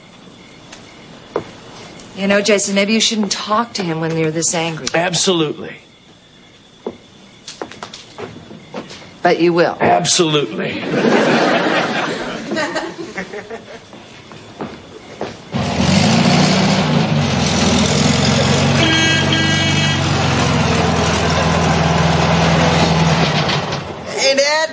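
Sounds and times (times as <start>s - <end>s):
speech: 2.2s - 5.9s, 9.2s - 12.0s
laughter: 10.4s - 14.0s
car engine idling as car arrives: 15.5s - 24.1s.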